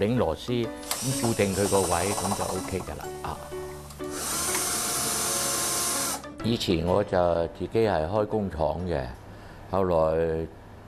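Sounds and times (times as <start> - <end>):
speech: 0.0 - 4.3, 6.4 - 10.6
power drill drilling holes into the back of a wooden door: 0.8 - 2.9, 3.9 - 6.2.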